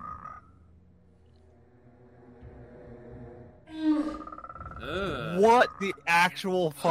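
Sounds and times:
frog croaking: 0.0 - 0.6, 3.7 - 6.1
low droning tones: 0.0 - 4.4
speech: 4.9 - 6.8.

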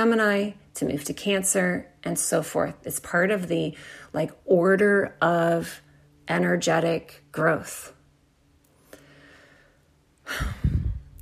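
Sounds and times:
speech: 0.0 - 8.0, 10.3 - 11.2
deep breathing: 8.8 - 11.2.

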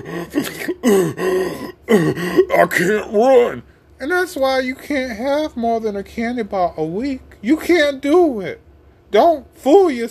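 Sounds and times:
voice imitating heavy, husky out-of-breath panting: 0.0 - 3.0
speech: 0.0 - 10.0.

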